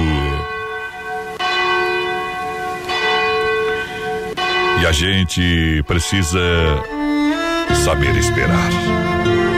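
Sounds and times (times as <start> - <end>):
large cathedral church bell tolling: 0.0 - 6.3
speech: 4.9 - 7.0, 7.8 - 9.4.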